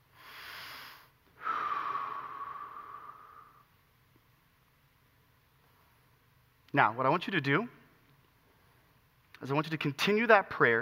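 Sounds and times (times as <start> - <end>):
deep breath in through the nose and out through the mouth during a relaxation exercise: 0.0 - 3.7
speech: 6.7 - 7.8, 9.4 - 10.8.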